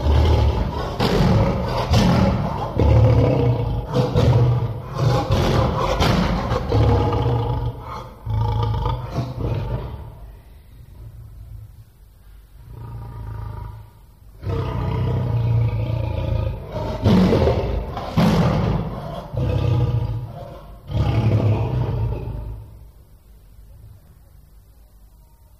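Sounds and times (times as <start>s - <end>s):
lion roaring: 0.0s - 10.3s, 12.6s - 22.8s.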